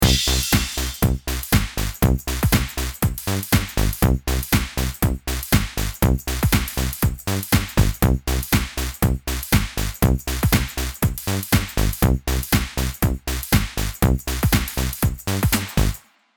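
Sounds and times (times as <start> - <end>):
bass groove in eighth notes: 0.0 - 16.0.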